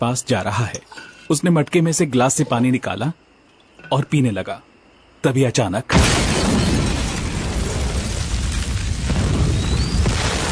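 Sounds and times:
speech: 0.0 - 3.3, 3.9 - 6.7
massive explosion at an oil well field: 6.0 - 10.4.

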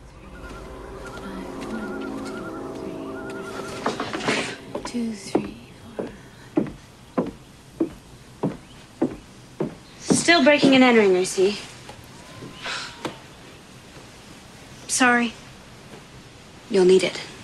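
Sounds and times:
faint tonal sounds: 0.0 - 8.0
footsteps walking: 0.0 - 11.0
speech: 4.9 - 5.4, 10.4 - 11.7, 15.0 - 15.4, 16.7 - 17.3.

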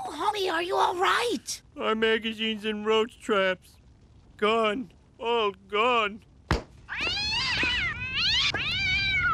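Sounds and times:
speech: 0.4 - 3.8, 4.4 - 6.3
cat yowling: 6.9 - 9.2.

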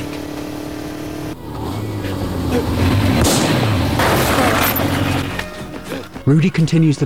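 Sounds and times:
dense rumbling roar: 1.2 - 5.3
loud blasts: 1.3 - 5.8
speech: 2.6 - 3.0, 6.3 - 7.0
gunfire: 3.0 - 5.4.

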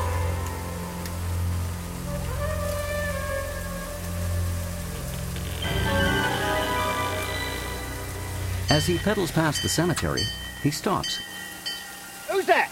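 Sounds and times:
pouring rain on a night street by a church: 0.0 - 12.7
speech: 8.7 - 11.3, 12.4 - 12.7.

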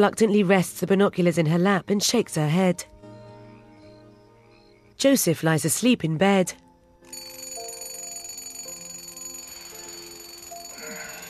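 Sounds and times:
speech: 0.0 - 3.0, 5.0 - 6.6
alarm clock ringing: 7.1 - 11.2.

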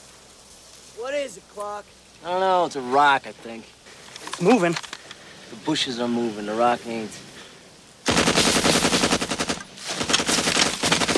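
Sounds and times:
speech: 1.0 - 3.8, 4.4 - 4.9, 5.5 - 7.3
automatic gunfire bursts aimed at something moving in a pool: 8.1 - 11.1.

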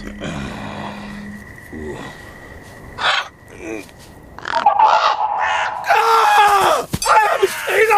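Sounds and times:
large birds cawing harshly while closing in on a cat in sand: 4.4 - 7.8.

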